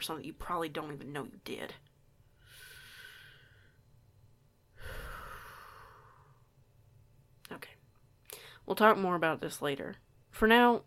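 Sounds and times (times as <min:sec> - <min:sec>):
speech: 0:00.0 - 0:01.9, 0:08.7 - 0:10.8
deep breathing as a person tries to calm down: 0:02.3 - 0:04.0, 0:04.7 - 0:06.5.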